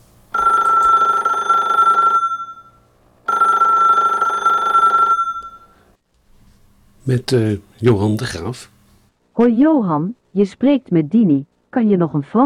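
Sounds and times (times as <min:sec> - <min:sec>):
telephone bell ringing: 0:00.3 - 0:05.8
speech: 0:07.1 - 0:08.8, 0:09.4 - 0:12.4.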